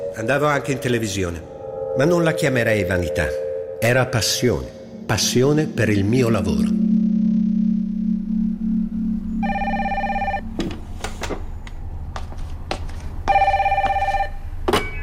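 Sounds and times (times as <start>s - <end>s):
low steady hum: 0.0s - 12.4s
speech: 0.2s - 6.8s
telephone ringing with a call from reception: 9.4s - 10.6s, 13.3s - 15.0s.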